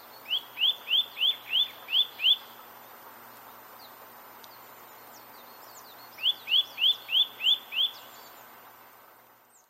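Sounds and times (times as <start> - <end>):
faint hiss: 0.0 - 9.6
Eurasian nuthatch Sitta europaea calling with upslurred whistled notes: 0.2 - 2.5, 5.4 - 8.4.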